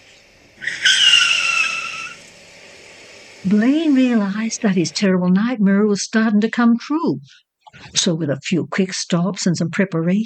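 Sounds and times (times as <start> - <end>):
car tires skidding to a halt: 0.6 - 2.3
speech: 3.4 - 10.2.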